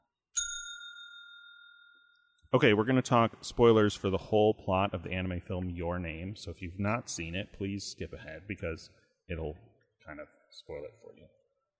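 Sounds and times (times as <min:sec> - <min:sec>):
single bell struck: 0:00.4 - 0:02.4
speech: 0:02.5 - 0:11.4.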